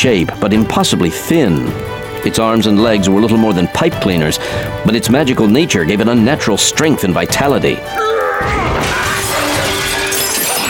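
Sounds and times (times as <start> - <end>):
speech: 0.0 - 9.0
mallet smashing a glass display case: 8.4 - 10.6.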